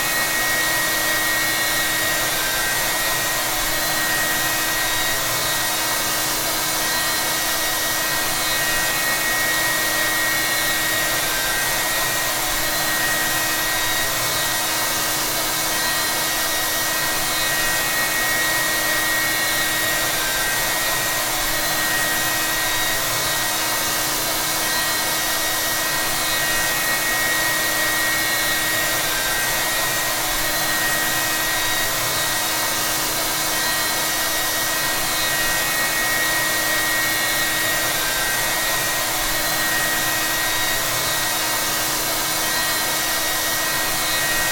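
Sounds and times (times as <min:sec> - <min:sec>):
women's hair dryer: 0:00.0 - 0:44.5.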